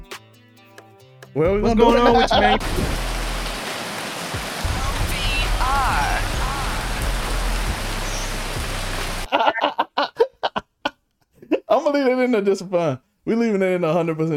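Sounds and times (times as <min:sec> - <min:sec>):
speech: 0:01.4 - 0:03.1, 0:11.9 - 0:14.3
laughter: 0:01.6 - 0:02.8, 0:09.2 - 0:10.6
rain falling: 0:02.5 - 0:09.3.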